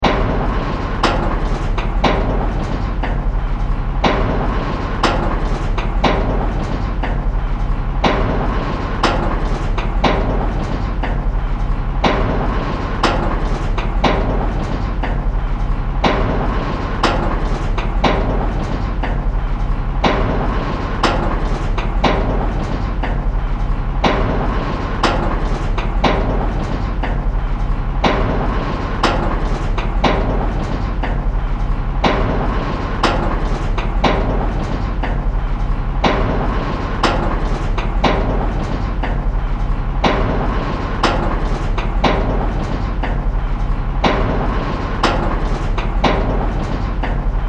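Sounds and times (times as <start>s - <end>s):
steampunk science fiction conveyor system device: 0.0s - 47.4s.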